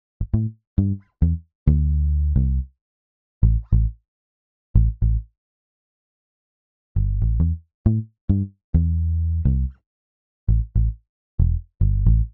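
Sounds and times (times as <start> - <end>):
island reggae bass: 0.2 - 2.7, 3.4 - 3.9, 4.8 - 5.2, 7.0 - 9.8, 10.5 - 12.3.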